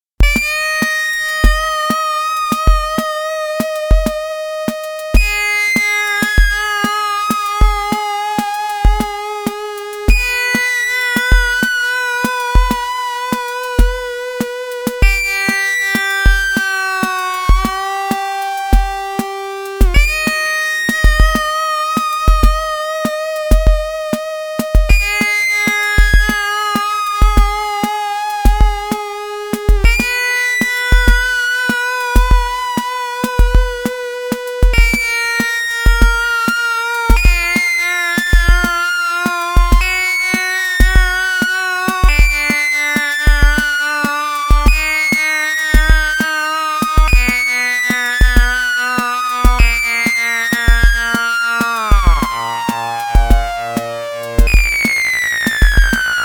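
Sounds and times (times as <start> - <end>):
Waldorf Rocket mono synthesizer oscillator sync: 0.2 - 56.2.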